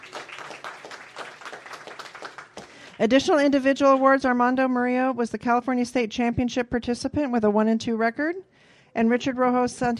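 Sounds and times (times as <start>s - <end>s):
audience applause at a school sports awards ceremony: 0.0s - 3.1s
speech: 3.0s - 9.9s.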